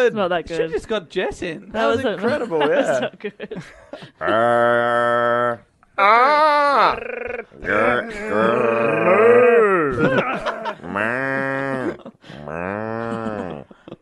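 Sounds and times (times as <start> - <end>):
speech: 0.0 - 13.7
laughter: 2.1 - 4.8, 7.4 - 14.0
person imitating cow mooing: 4.2 - 13.7.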